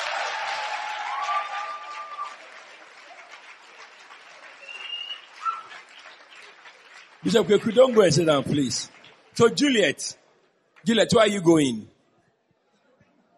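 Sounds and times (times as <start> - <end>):
crowd applauding: 0.0 - 10.1, 10.7 - 11.8
high whistles: 4.6 - 5.8
speech: 7.2 - 10.2, 10.8 - 11.9.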